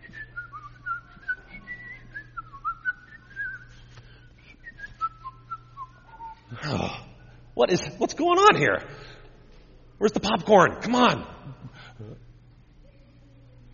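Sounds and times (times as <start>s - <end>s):
person whistling a wandering, wavering tune: 0.0s - 6.6s
low steady hum: 0.0s - 13.7s
speech: 7.6s - 9.1s, 10.0s - 11.3s.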